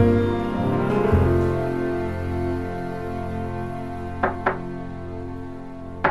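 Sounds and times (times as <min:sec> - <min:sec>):
sustained music: 0:00.0 - 0:06.1
firm knocking on a door: 0:04.2 - 0:04.6.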